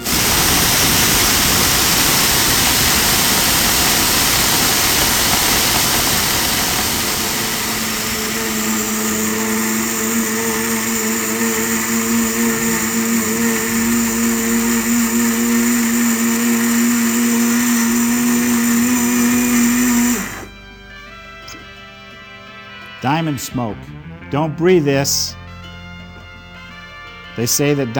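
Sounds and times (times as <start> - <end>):
blender grinding cubic zirconia stones on ice crush setting: 0.0 - 20.6
speech: 23.4 - 25.4, 27.4 - 27.9.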